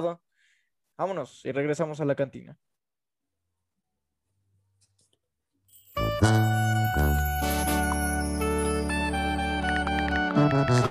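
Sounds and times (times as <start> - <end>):
speech: 0.0 - 0.2, 1.0 - 2.7
song with rich sustained tones and bright chiming accents: 5.7 - 10.7.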